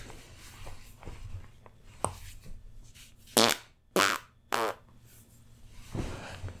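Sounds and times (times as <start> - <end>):
sputtering fart: 3.4 - 4.9.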